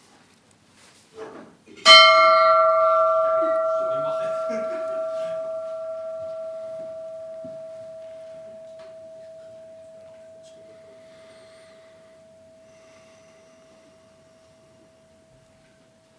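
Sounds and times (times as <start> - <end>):
faint room noise: 0.0 - 16.1
single gong struck with bright metallic clang: 1.8 - 12.7.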